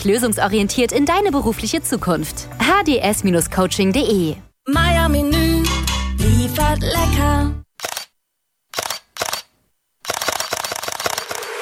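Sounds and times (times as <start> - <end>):
speech: 0.0 - 5.5, 6.5 - 7.6
smartphone Leica camera shutter clicks: 7.8 - 8.1, 8.7 - 11.6
rapid burst of continuous-shooting smartphone shutter clicks: 7.8 - 11.6.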